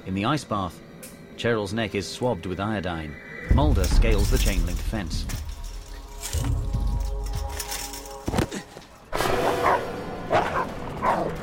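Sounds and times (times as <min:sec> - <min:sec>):
speech: 0:00.1 - 0:05.4
rough steady background: 0:02.0 - 0:09.1
clattering noise: 0:03.5 - 0:09.0
guard dogs barking as they attack a man: 0:09.2 - 0:11.4.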